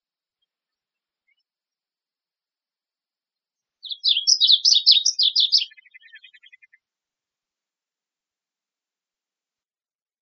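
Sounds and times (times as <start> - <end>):
varied bunting singing in Arizona: 3.8 - 6.7.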